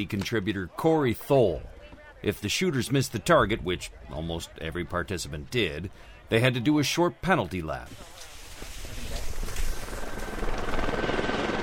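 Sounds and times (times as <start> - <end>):
speech: 0.0 - 8.2
helicopter rotor thumping: 9.5 - 11.6.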